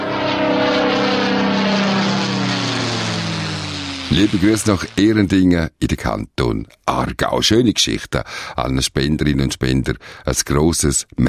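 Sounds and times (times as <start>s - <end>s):
propeller airplane droning overhead: 0.0s - 5.3s
speech: 4.2s - 11.2s.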